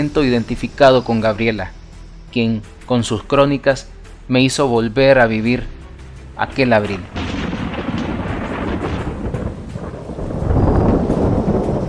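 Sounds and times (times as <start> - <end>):
speech: 0.0 - 5.8, 6.4 - 7.3
deep rumbling thunder: 6.6 - 11.8
gusty wind noise: 7.0 - 11.8
heavy rain pouring down: 7.0 - 11.8.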